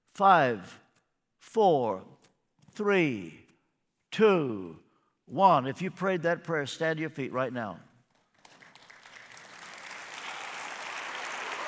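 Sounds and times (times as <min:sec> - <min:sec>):
speech: 0:00.2 - 0:00.8, 0:01.4 - 0:02.2, 0:02.8 - 0:03.4, 0:04.1 - 0:07.9
congregation clapping: 0:08.3 - 0:11.6.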